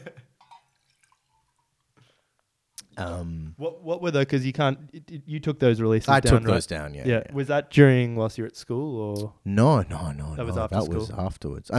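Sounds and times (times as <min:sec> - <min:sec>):
water poured from a jug: 0:00.5 - 0:01.7
speech: 0:03.0 - 0:11.7.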